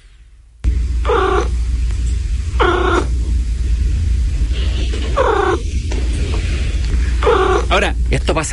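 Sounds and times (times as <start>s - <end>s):
steady low rumble: 0.0s - 8.5s
cat trilling: 1.0s - 1.5s, 2.6s - 3.1s, 5.2s - 5.6s, 7.2s - 7.8s
speech: 7.8s - 8.5s.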